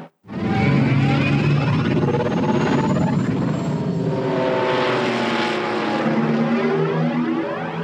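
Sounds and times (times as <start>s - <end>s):
sci-fi gunship flying built from aircraft recordings at Gnoss Field in Novato California: 0.3s - 7.8s.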